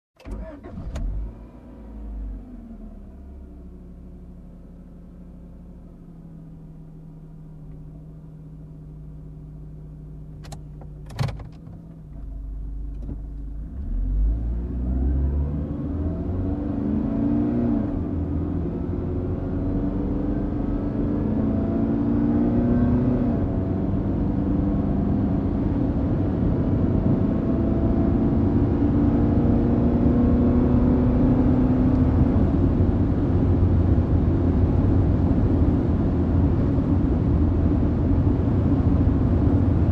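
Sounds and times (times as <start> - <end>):
sports car driving fast: 13.6 - 39.9.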